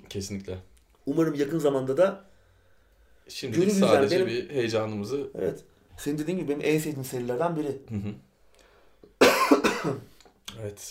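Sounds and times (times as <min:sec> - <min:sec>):
speech: 0:00.1 - 0:02.3, 0:03.3 - 0:08.3, 0:09.8 - 0:10.9
person coughing: 0:09.2 - 0:10.1.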